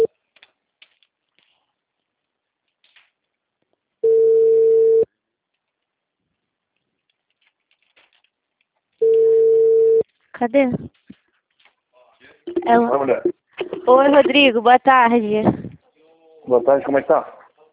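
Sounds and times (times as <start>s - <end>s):
ringback tone of an outgoing phone call: 4.0s - 5.1s, 9.0s - 10.0s
speech: 10.4s - 11.0s, 12.6s - 15.6s, 16.5s - 17.4s.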